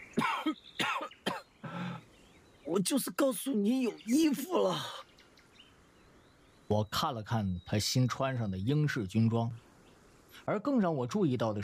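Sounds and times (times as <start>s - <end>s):
stifled suppressed coughs: 0.2s - 2.0s
speech: 2.7s - 5.0s, 6.7s - 9.7s, 10.4s - 11.6s.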